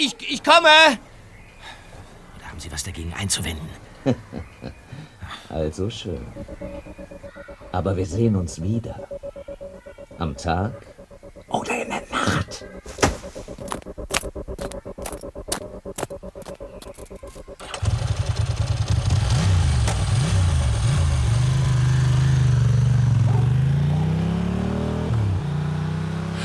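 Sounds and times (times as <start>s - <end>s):
speech: 0.0s - 1.1s, 2.6s - 4.8s, 5.5s - 10.9s, 11.5s - 13.5s
laughter: 3.8s - 5.5s
motorcycle engine sputtering, revving and droning as it rides off: 6.2s - 26.4s.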